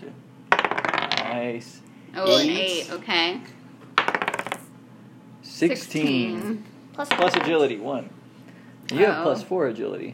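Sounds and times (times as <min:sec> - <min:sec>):
dice rolled by hand on a hard tabletop: 0:00.5 - 0:01.4, 0:04.0 - 0:04.6, 0:07.1 - 0:07.6
speech: 0:01.4 - 0:03.6, 0:05.6 - 0:08.2, 0:08.9 - 0:10.1.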